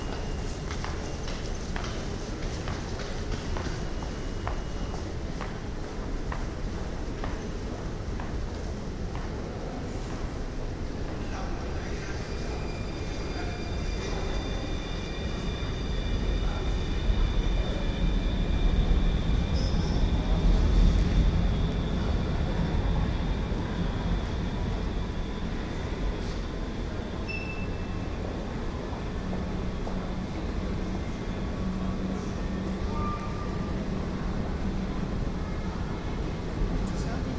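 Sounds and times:
thin metallic squeals from tram wheels on rails: 0:00.0 - 0:05.6, 0:11.2 - 0:34.6
tram rumbling through an underground tunnel: 0:00.0 - 0:37.3.

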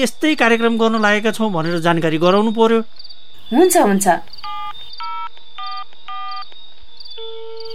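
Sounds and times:
speech: 0:00.0 - 0:04.5
steady telephone tone: 0:04.4 - 0:06.5, 0:07.2 - 0:07.7
telephone keypad tones dialing a number: 0:04.4 - 0:06.5.

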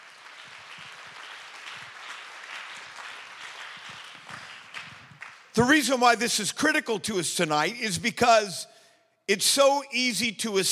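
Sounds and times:
crowd clapping: 0:00.0 - 0:05.7
speech: 0:05.6 - 0:08.7, 0:09.3 - 0:10.7.

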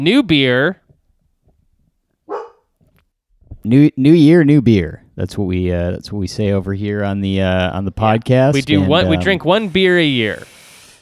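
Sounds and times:
speech: 0:00.0 - 0:00.8, 0:03.6 - 0:10.6
dog barking: 0:02.3 - 0:02.7.

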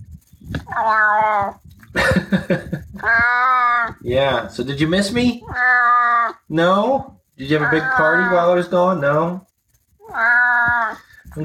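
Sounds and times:
cat meowing with a hoarse deep tone: 0:00.6 - 0:01.7, 0:03.0 - 0:04.0, 0:05.4 - 0:06.5, 0:07.4 - 0:08.6, 0:10.0 - 0:11.1
speech: 0:00.8 - 0:09.5
laughter: 0:02.0 - 0:03.2.

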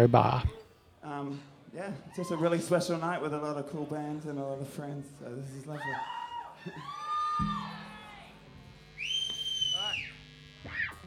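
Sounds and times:
speech: 0:00.0 - 0:07.9
person whistling loudly and shrilly in a noisy room: 0:09.0 - 0:10.2.

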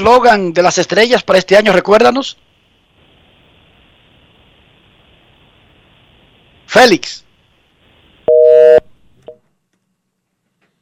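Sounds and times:
speech: 0:00.0 - 0:02.4, 0:06.7 - 0:07.2
telephone busy tone after a dropped call on a phone line: 0:08.3 - 0:08.8.

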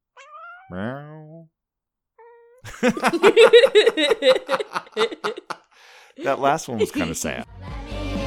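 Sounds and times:
cat meowing: 0:00.1 - 0:00.9, 0:02.2 - 0:02.6
speech: 0:00.7 - 0:01.6, 0:02.8 - 0:05.6, 0:06.2 - 0:08.1
several people laughing: 0:02.7 - 0:07.4.

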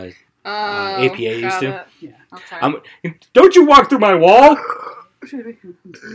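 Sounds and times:
speech: 0:00.0 - 0:06.1
drawn-out gurgling beer burp: 0:04.6 - 0:05.1.

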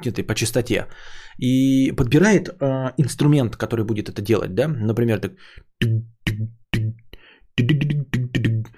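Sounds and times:
speech: 0:00.0 - 0:07.0, 0:07.6 - 0:08.3
voice mimicking a bass guitar line: 0:05.8 - 0:08.7.

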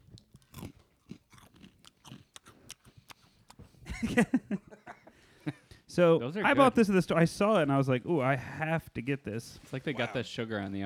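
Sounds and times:
chewing crunchy sour cereal loops: 0:00.0 - 0:03.8
speech: 0:04.0 - 0:04.6, 0:06.0 - 0:10.8.

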